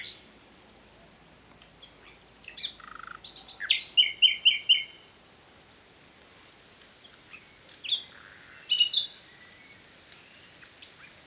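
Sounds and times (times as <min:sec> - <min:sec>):
Common nightingale singing: 0:01.6 - 0:05.1, 0:07.0 - 0:11.2.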